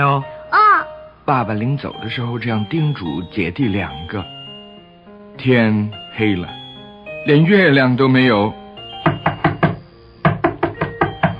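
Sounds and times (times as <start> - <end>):
speech: 0.0 - 0.3, 1.3 - 4.4, 5.4 - 6.6, 7.2 - 8.6
sharp knocks on a door: 9.0 - 11.3.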